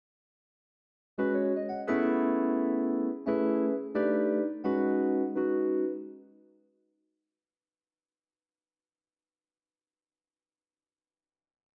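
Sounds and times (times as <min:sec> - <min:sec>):
Rhodes electric piano jazz: 0:01.2 - 0:06.3.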